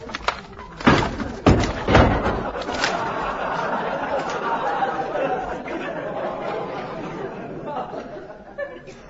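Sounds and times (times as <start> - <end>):
murmur of crowd chatter: 0.0 - 9.0
heavy front door crashing down: 0.3 - 3.3
scattered laughter from a crowd: 1.7 - 9.0.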